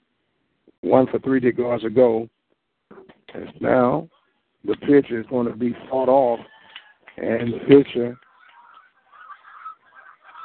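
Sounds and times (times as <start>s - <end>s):
speech: 0.7s - 2.4s, 3.3s - 6.5s, 7.2s - 8.2s
flock of geese honking: 8.2s - 10.4s.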